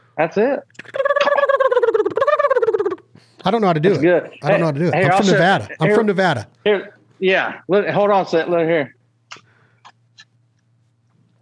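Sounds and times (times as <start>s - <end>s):
speech: 0.2s - 1.0s, 3.4s - 9.4s
turkey mouth call yelping: 0.8s - 3.0s.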